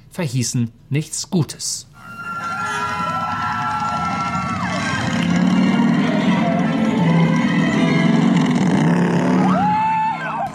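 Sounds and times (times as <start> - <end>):
speech: 0.2 - 2.2
roller coaster riders shrieking: 2.0 - 10.5
motorbike-style roller coaster roaring past: 2.2 - 10.5.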